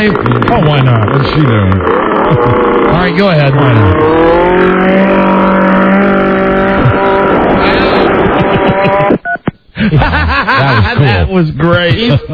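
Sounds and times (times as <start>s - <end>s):
speech: 0.0s - 5.1s, 9.9s - 12.3s
lawn edger small engine roaring: 0.0s - 9.1s
laughter: 2.2s - 3.6s, 6.6s - 12.3s.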